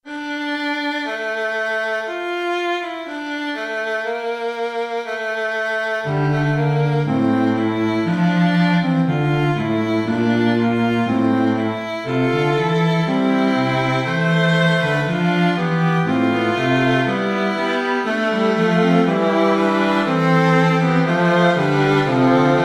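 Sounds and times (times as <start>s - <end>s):
recorder playing a fugue: 0.0s - 22.6s.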